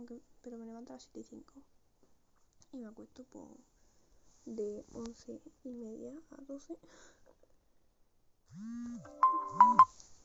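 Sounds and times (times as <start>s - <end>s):
speech: 0.1s - 1.8s, 2.7s - 3.8s, 4.4s - 7.2s, 8.5s - 10.0s
phone alarm ringing with an electronic melody: 9.1s - 9.9s.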